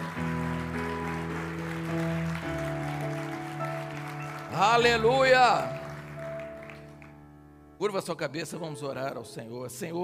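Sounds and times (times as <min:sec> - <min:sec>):
audience applauding and shouting praise: 0:00.0 - 0:07.3
sustained keyboard chords: 0:00.0 - 0:09.8
speech: 0:04.6 - 0:05.8, 0:07.8 - 0:10.0.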